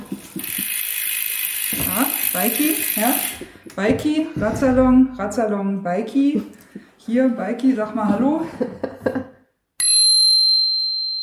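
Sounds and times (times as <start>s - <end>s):
laughter: 0.0s - 0.7s, 8.0s - 9.4s
bicycle bell ringing with long resonance: 0.4s - 3.4s, 9.8s - 11.2s
speech: 2.0s - 9.2s.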